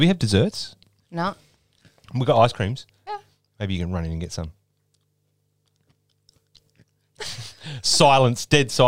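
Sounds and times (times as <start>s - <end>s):
speech: 0.0s - 1.5s, 2.1s - 4.6s, 7.2s - 8.8s
faint steady hum: 0.0s - 8.8s
crunchy chewing: 4.7s - 7.0s.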